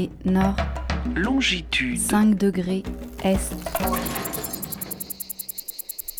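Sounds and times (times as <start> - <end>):
speech: 0.0 - 4.3
cicadas chorusing in a pine forest in Provence: 2.6 - 6.1.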